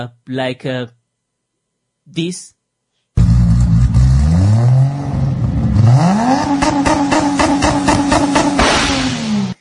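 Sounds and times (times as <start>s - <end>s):
speech: 0.0s - 1.0s, 2.1s - 2.6s
combustion car engine revving hard: 3.2s - 9.5s.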